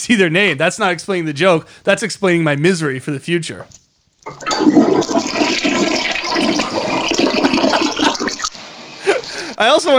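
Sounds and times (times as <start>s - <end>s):
speech: 0.0s - 5.6s, 9.6s - 9.9s
toilet flushing: 4.3s - 9.6s.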